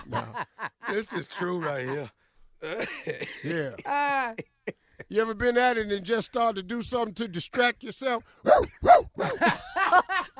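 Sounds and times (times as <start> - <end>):
laughter: 0.0 - 5.1, 9.2 - 10.3
speech: 0.9 - 10.2
person imitating a barking dog: 8.4 - 9.4.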